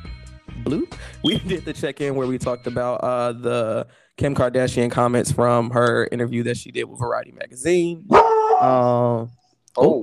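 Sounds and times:
speech: 0.7 - 10.0
large dog howling deeply: 8.1 - 8.9.

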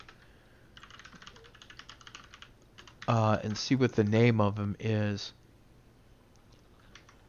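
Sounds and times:
rapid typing on a computer keyboard: 0.0 - 4.2, 6.8 - 7.2
low hum: 0.0 - 7.2
speech: 3.1 - 5.4.

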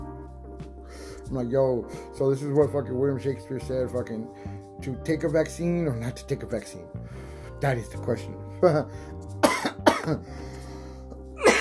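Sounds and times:
speech: 1.3 - 9.3, 10.0 - 10.5
harsh coughs after smoking weed: 9.4 - 10.2, 11.4 - 11.5.

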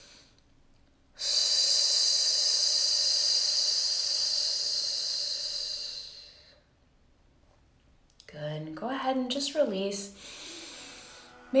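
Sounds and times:
breath hissing through the teeth in a snake-breath exercise: 1.2 - 6.6, 10.2 - 11.4
speech: 8.6 - 10.4.

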